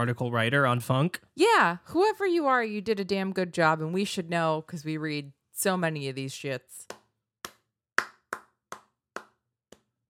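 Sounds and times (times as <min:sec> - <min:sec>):
speech: 0:00.0 - 0:07.0
sharp hand claps: 0:06.8 - 0:09.9.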